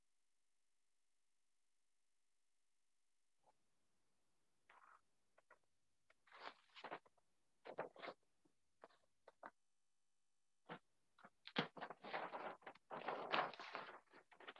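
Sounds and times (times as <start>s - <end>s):
paper rustling and crinkling as notes are shuffled: 4.7s - 8.2s, 8.8s - 9.5s, 10.7s - 14.5s.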